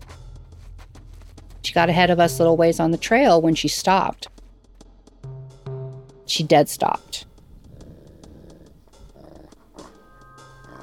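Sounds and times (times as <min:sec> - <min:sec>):
speech: 0:01.7 - 0:04.3, 0:06.3 - 0:07.3
golden retriever growling on a hiking trail: 0:07.5 - 0:10.8.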